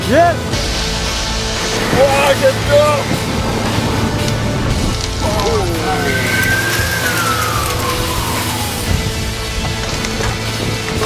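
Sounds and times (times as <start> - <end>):
speech: 0.1 - 0.5, 2.0 - 3.3
heavy road traffic roar: 0.4 - 11.0
high whine of a passing vehicle: 1.5 - 9.5.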